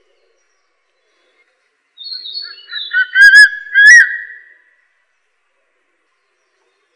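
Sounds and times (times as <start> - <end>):
crested serpent eagle calling with wavering and ringing whistles: 2.0 - 4.6.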